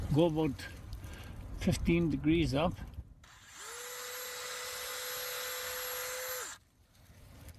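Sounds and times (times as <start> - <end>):
speech: 0.1 - 0.8, 1.6 - 2.9
power drill boring into a birch tree: 3.3 - 6.6.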